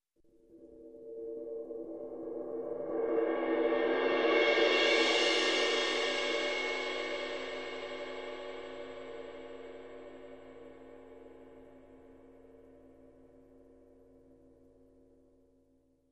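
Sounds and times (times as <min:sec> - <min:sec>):
long cymbal swell: 0:01.8 - 0:10.8.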